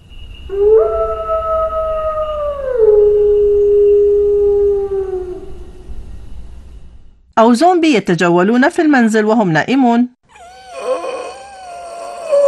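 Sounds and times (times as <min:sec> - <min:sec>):
faint low rumble: 0:00.1 - 0:07.4
speech: 0:00.5 - 0:00.8, 0:07.4 - 0:10.2
wolf howling: 0:00.5 - 0:05.9, 0:10.3 - 0:12.4.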